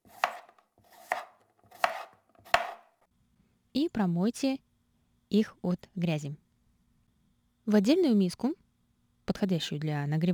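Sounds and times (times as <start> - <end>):
knife cutting mushroom stems on a cutting board: 0.0 - 2.9
speech: 3.8 - 4.6, 5.3 - 6.4, 7.7 - 8.6, 9.3 - 10.3.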